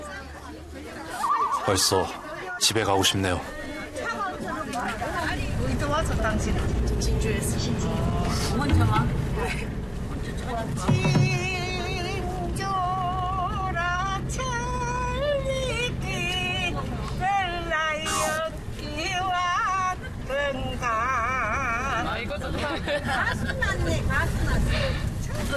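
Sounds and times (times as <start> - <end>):
crowded bus engine drone: 0.0 - 25.5
elderly passengers chattering and laughing on a packed bus: 0.0 - 25.5
speech: 1.7 - 3.6, 4.8 - 9.8, 10.5 - 11.4.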